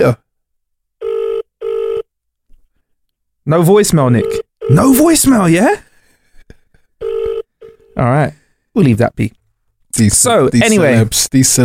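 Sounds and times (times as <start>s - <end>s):
speech: 0.0s - 0.2s, 3.4s - 5.9s, 8.0s - 9.4s, 10.0s - 11.6s
telephone ringing with electronic tones: 1.0s - 2.1s, 4.2s - 5.2s, 7.0s - 8.0s.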